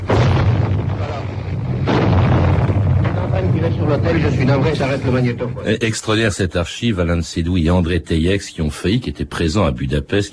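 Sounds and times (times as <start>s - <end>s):
dense gunfire and tank blasts firing grapeshot during street fighting in Budapest: 0.0s - 4.9s
speech: 4.1s - 10.3s.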